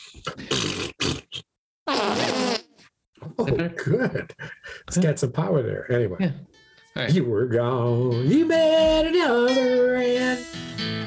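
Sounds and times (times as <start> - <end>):
loud sputtering fart noises: 0.2 - 2.9
speech: 3.4 - 10.6.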